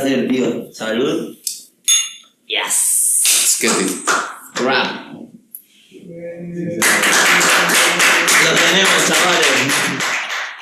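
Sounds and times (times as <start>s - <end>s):
speech: 0.0s - 1.4s, 2.5s - 5.2s, 6.0s - 10.1s
glasses clinking in a toast: 1.9s - 2.3s.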